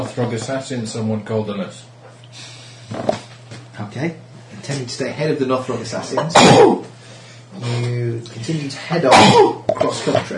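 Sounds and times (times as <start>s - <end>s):
speech: 0.0s - 3.2s, 3.9s - 7.0s, 7.6s - 10.3s
sneeze: 6.3s - 6.8s, 9.1s - 9.6s.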